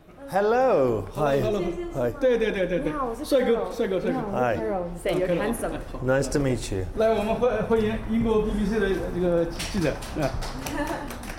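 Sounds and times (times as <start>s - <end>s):
overlapping voices greeting and chatting: 0.1s - 11.2s
speech: 0.3s - 11.2s
staff clapping in quick uneven bursts: 9.4s - 11.3s.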